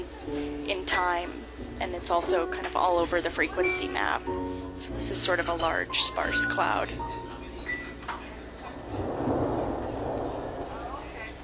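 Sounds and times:
steady light rain outdoors: 0.0 - 11.4
speech: 0.3 - 7.2
faint low rumble: 6.9 - 11.4.

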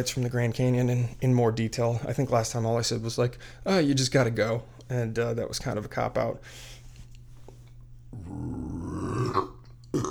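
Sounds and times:
speech: 0.0 - 6.8, 8.1 - 10.0
long low rumbling seltzer water burp: 8.1 - 10.0.

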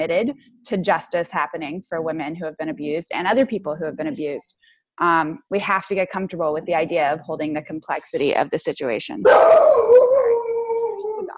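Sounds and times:
speech: 0.0 - 11.3
dog howling: 9.3 - 11.3.

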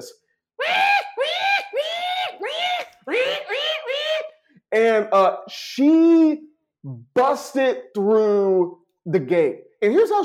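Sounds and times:
speech: 0.0 - 0.8, 4.7 - 10.2
person imitating a pig screaming: 0.6 - 4.4.

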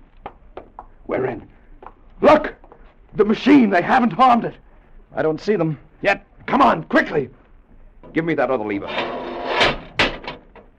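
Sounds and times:
speech: 1.1 - 1.6, 2.2 - 2.6, 3.2 - 7.4, 8.1 - 9.1
doors swinging shut: 8.9 - 10.7.

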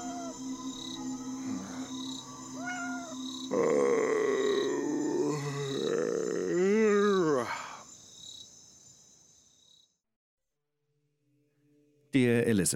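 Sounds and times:
cat meowing on a hot night: 0.0 - 0.4, 2.6 - 3.2
crickets chirping: 0.0 - 9.9
speech: 12.2 - 12.7.

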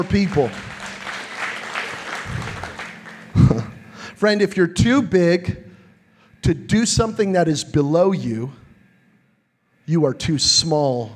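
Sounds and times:
speech: 0.0 - 0.7, 4.2 - 5.6, 6.4 - 8.6, 9.9 - 11.1
audience clapping hands: 0.0 - 3.8.

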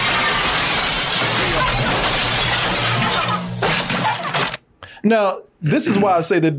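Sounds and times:
debris rattling: 0.0 - 4.6
window glass shattering as intruders crash through: 0.0 - 4.6
speech: 5.0 - 6.5.

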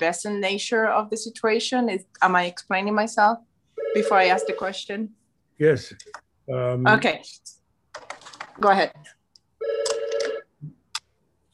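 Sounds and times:
speech: 0.0 - 7.6, 8.6 - 9.8
telephone ringing: 3.8 - 4.8, 9.6 - 10.5.

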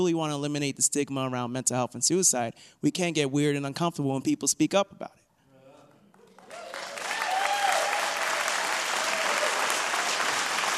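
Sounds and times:
speech: 0.0 - 5.2
crowd applauding: 6.1 - 10.7.

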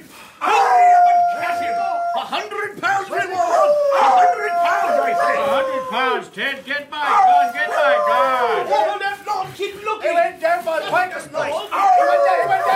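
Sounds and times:
dogs baying and howling: 0.4 - 2.4, 3.1 - 6.2, 7.1 - 8.9, 11.7 - 12.7
several men shouting: 0.4 - 6.3, 7.0 - 9.5, 10.6 - 12.7.

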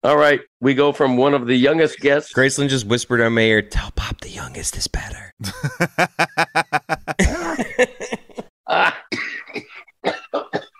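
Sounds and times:
speech: 0.0 - 9.4
man coughing in heavy ragged bursts: 5.4 - 6.0, 7.0 - 10.7
laughter: 5.4 - 9.1
man clearing his throat: 7.2 - 7.7, 8.7 - 10.7.

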